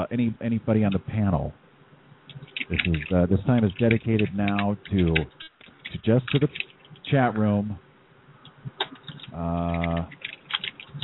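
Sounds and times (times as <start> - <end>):
speech: 0.0 - 1.6, 2.3 - 7.8, 9.4 - 10.2
typing on a computer keyboard: 2.3 - 6.8, 8.8 - 11.0.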